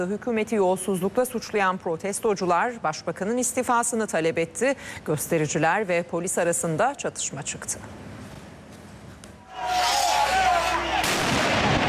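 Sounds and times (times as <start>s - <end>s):
speech: 0.0s - 8.2s
fireworks going off at a street anti-corruption protest amid clashes with police: 9.6s - 11.8s.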